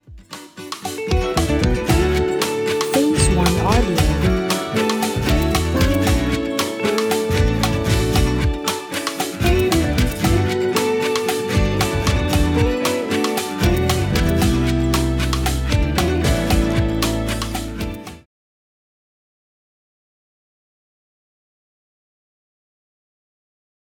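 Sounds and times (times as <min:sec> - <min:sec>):
acoustic song: 0:00.3 - 0:18.2.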